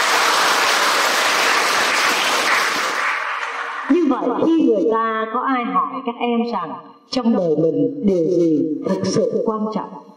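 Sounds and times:
sizable crowd applauding: 0.0 - 4.1
speech: 4.9 - 10.0.

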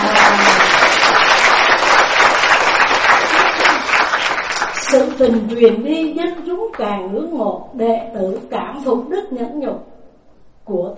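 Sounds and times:
audience applause: 0.0 - 5.2
speech: 5.2 - 9.9, 10.7 - 10.9.

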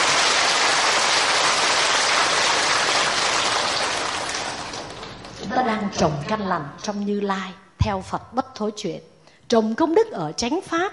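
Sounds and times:
audience applause at a Buddhist Dharma talk: 0.0 - 5.4
speech: 5.6 - 10.9.

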